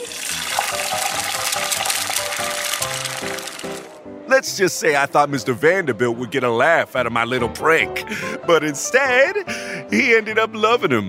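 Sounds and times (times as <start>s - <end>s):
thin potato slices frying to a crisp: 0.0s - 4.0s
speech: 4.4s - 11.0s.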